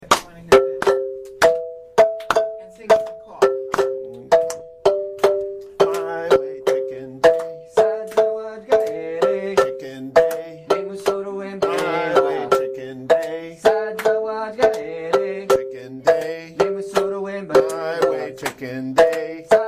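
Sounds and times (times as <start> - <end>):
marimba: 0.5 - 19.6
person singing: 3.3 - 4.6, 5.7 - 19.6.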